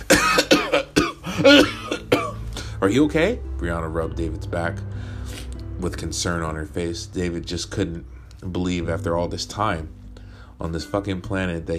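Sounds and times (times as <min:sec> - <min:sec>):
man coughing violently: 0:00.0 - 0:02.7
speech: 0:00.8 - 0:01.8, 0:02.8 - 0:04.9, 0:05.8 - 0:10.0, 0:10.6 - 0:11.7.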